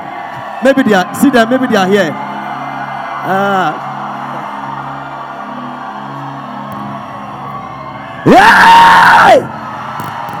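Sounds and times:
speech: 0.6s - 2.2s, 3.2s - 3.9s, 8.2s - 9.5s
joyful whoop: 2.3s - 10.3s.

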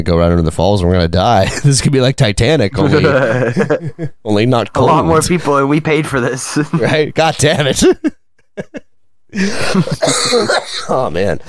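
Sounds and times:
speech: 0.0s - 11.4s
laughter: 2.8s - 4.2s, 7.7s - 10.9s
person with a persistent cough coughing: 9.4s - 11.1s.

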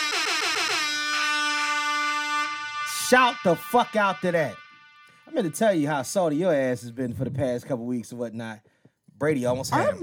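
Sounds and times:
air horn blast sound effect: 0.0s - 6.2s
speech: 3.1s - 4.6s, 5.3s - 10.0s.

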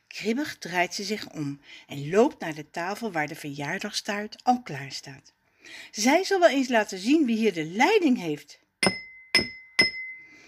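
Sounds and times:
speech: 0.2s - 9.5s
woman's ring tapping against a glass at a birthday party: 8.8s - 10.3s.

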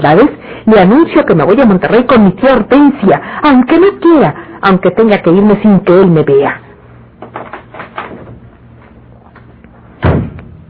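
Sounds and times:
speech: 0.0s - 6.6s
door shutting with a solid thud: 10.0s - 10.6s.

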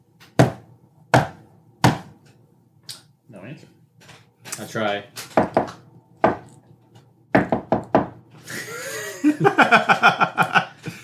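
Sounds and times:
speech: 3.3s - 3.8s, 4.6s - 5.2s, 9.4s - 10.5s
knocking on a locked street-level wooden door: 5.4s - 6.5s, 7.3s - 8.2s
person chuckling or humming: 8.4s - 11.0s.

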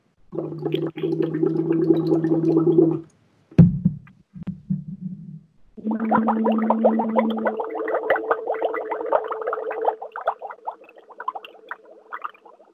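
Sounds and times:
air bubbles blown through water likely through a straw: 0.3s - 3.0s, 5.8s - 12.7s.

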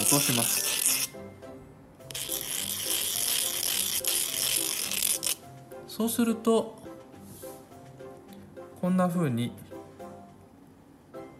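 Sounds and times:
sandpaper rubbing in circles on the cut end of a nylon filament: 0.0s - 1.1s, 2.1s - 5.4s
speech: 0.1s - 1.0s, 6.0s - 6.8s, 8.8s - 9.6s.

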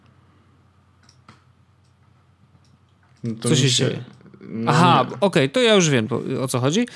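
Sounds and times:
steady low hum: 0.0s - 6.9s
faint crisp computer mouse clicks selecting folders: 1.0s - 3.3s
speech: 3.2s - 6.9s.

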